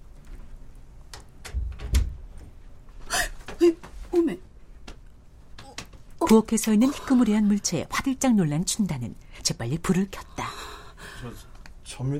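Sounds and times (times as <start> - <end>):
bedroom door being closed quietly: 1.4 - 2.5
speech: 6.3 - 10.4, 11.2 - 12.1
light breathing: 10.4 - 11.7.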